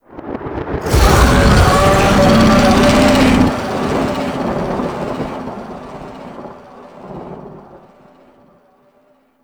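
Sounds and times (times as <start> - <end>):
moon monster bellow: 0.8 - 6.3.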